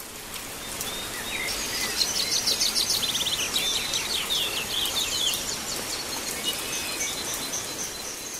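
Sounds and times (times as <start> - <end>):
rain during a storm: 0.0 - 8.3
bird song trills and chirps: 0.5 - 8.3.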